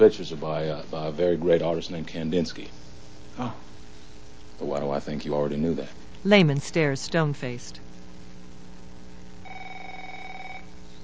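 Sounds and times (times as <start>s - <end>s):
speech: 0.0s - 3.7s, 4.6s - 7.8s
steady low hum: 0.0s - 11.0s
telephone bell ringing for a business call: 9.4s - 10.7s.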